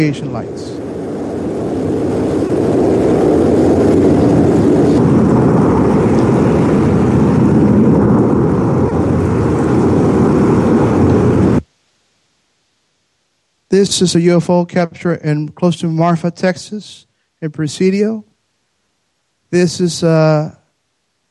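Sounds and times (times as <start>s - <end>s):
speech: 0.0s - 0.8s, 13.7s - 18.3s, 19.5s - 20.6s
commercial airplane engine roar: 0.0s - 11.6s.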